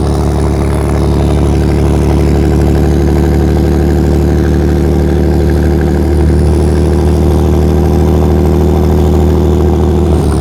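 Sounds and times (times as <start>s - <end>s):
tank driving: 0.0s - 10.3s.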